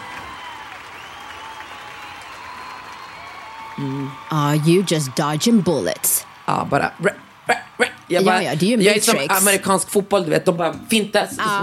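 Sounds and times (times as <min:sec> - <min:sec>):
applause from a group: 0:00.0 - 0:09.5
speech: 0:03.8 - 0:11.6.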